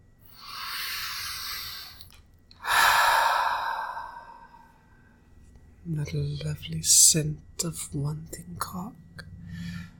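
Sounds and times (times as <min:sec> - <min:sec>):
deep breath drawn in through the nose: 0:00.3 - 0:04.9
speech: 0:05.9 - 0:09.8.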